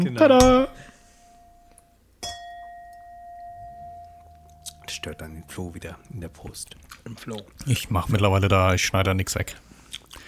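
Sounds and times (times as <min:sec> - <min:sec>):
speech: 0:00.0 - 0:00.9, 0:05.0 - 0:10.2
wine glass ringing tone: 0:00.3 - 0:06.1
wine glasses filled with Schwarzriesling clinking in a toast: 0:00.3 - 0:06.1.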